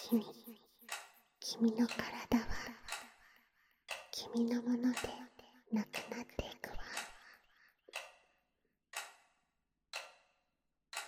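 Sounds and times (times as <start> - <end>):
clock ticking: 0.0 - 3.2, 3.9 - 8.3, 8.9 - 11.0
speech: 0.1 - 0.6, 1.5 - 2.4, 4.2 - 7.0.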